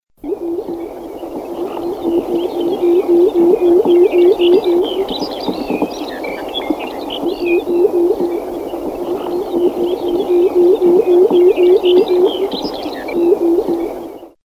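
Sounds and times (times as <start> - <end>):
pectoral sandpiper calling: 0.2 - 14.4.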